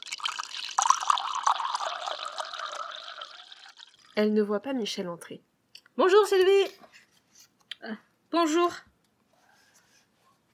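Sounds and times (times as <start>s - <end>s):
water pouring into a glass: 0.0s - 4.2s
speech: 4.2s - 7.0s, 7.8s - 8.9s.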